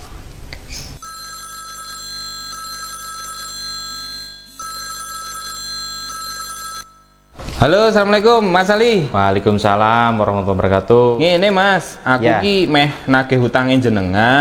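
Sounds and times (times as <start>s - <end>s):
telephone ringback tone while placing a call: 1.0s - 7.4s
speech: 7.6s - 14.3s.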